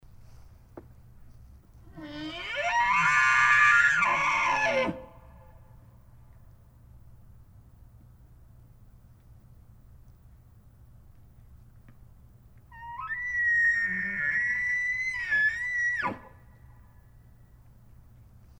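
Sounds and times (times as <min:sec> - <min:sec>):
elk bugling: 0:01.9 - 0:05.2, 0:12.7 - 0:16.5.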